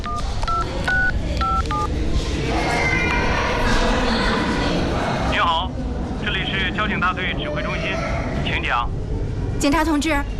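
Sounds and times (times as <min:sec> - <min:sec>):
phone keypad tones as a number is dialed: 0:00.0 - 0:01.9
indistinct chatter: 0:00.0 - 0:10.3
speech: 0:09.6 - 0:10.3.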